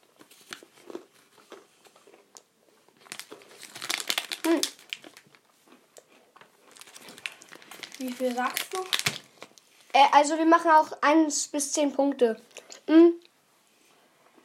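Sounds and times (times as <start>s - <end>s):
packaging crinkling: 0.0s - 2.3s, 2.9s - 5.5s, 6.4s - 10.0s
Oreo cookies crunching while eaten: 0.0s - 9.6s
speech: 8.0s - 9.2s, 10.0s - 13.2s.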